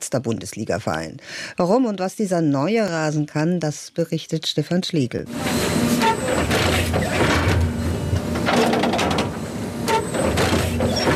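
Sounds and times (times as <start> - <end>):
speech: 0.1 - 7.2
hybrid turf stitching machine rumbling: 5.3 - 11.1.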